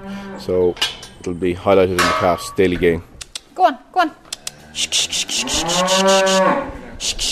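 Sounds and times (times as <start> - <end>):
speech: 0.2 - 7.3
cow mooing while walking onto scales: 4.8 - 6.8.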